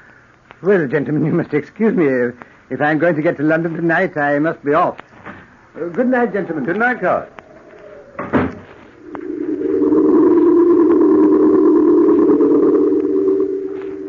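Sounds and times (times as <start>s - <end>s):
speech: 0.6s - 5.1s, 5.8s - 7.4s
steady low droning tone: 7.2s - 14.0s
door shut by a person leaving with a solid thud: 8.1s - 8.8s.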